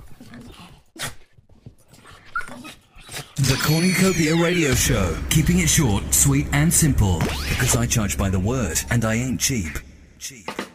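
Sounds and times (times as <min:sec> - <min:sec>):
dog whimpering and whining: 0:02.2 - 0:04.6
speech: 0:03.4 - 0:10.6.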